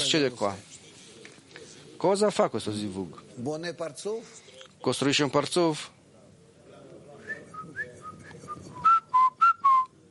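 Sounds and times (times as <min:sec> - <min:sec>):
faint noise: 0:00.0 - 0:10.1
speech: 0:00.1 - 0:00.7, 0:02.0 - 0:06.0
rabbi whistling a short tune: 0:07.3 - 0:09.9.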